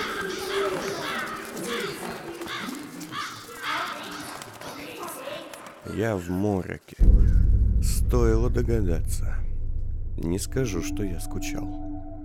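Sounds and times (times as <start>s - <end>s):
flock of crows cawing: 0.0s - 4.3s
crows taking flight: 0.0s - 6.0s
speech: 6.0s - 7.4s, 8.1s - 9.4s, 10.2s - 12.1s.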